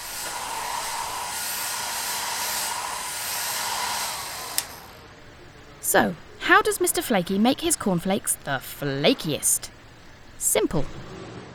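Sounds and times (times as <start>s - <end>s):
large hairdryer-like machine blasting air: 0.0s - 4.7s
speech: 5.9s - 9.8s, 10.4s - 11.2s.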